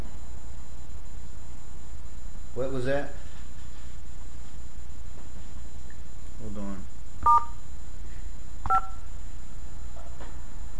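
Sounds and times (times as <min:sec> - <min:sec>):
faint steady phone line hum: 0:00.0 - 0:10.7
speech: 0:02.6 - 0:03.2
touch-tone phone keypad beeps during a call: 0:07.2 - 0:07.5, 0:08.7 - 0:09.0.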